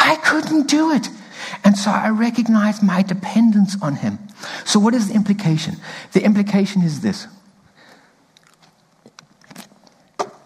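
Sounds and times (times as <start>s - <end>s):
speech: 0.1s - 7.4s
person sipping a drink: 8.1s - 10.4s
quiet wet mouth clicks and smacks: 8.3s - 10.4s.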